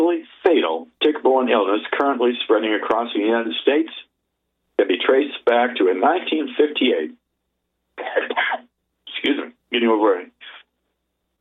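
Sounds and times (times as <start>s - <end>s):
speech: 1.3s - 4.1s, 4.8s - 7.2s, 8.0s - 8.6s, 9.2s - 10.4s
person with a mild head cold clearing throat: 8.0s - 8.7s
person with a mild head cold coughing: 8.0s - 8.7s.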